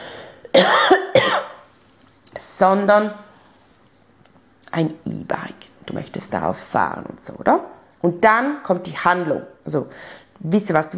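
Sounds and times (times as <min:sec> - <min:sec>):
person coughing harshly: 0:00.4 - 0:01.6
speech: 0:02.6 - 0:03.3, 0:04.8 - 0:10.9.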